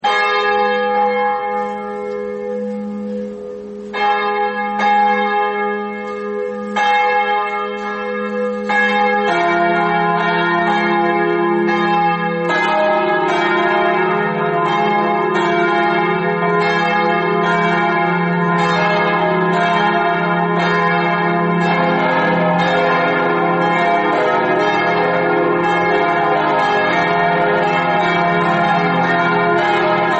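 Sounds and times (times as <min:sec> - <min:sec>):
church bells ringing: 0:00.0 - 0:30.1.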